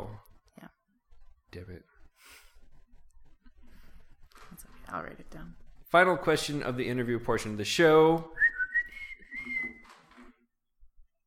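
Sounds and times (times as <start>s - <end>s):
speech: 1.6s - 2.4s, 4.9s - 8.5s
person whistling a high note: 8.3s - 9.9s.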